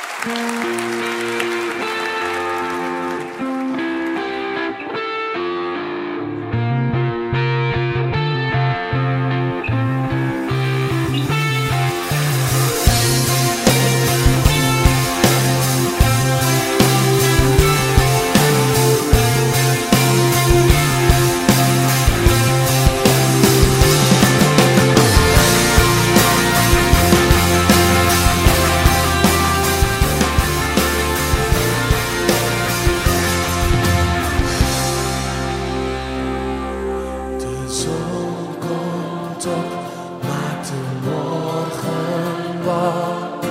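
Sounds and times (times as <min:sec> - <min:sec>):
loud full-band worship song: 0:00.0 - 0:43.4
steady driving drum beat: 0:10.5 - 0:36.4.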